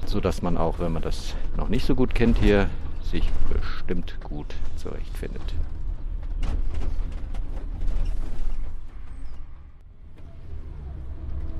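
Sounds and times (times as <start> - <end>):
creaks and rattles from the bus cabin: 0.0 - 11.5
low engine rumble of a moving bus: 0.0 - 11.5
speech: 0.1 - 5.8, 6.4 - 7.2.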